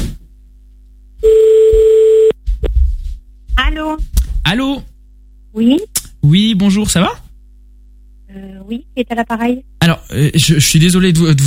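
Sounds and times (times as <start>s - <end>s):
telephone ringing tone on an outgoing call: 1.2s - 2.4s
speech: 3.7s - 4.9s, 5.5s - 7.2s, 8.4s - 11.4s.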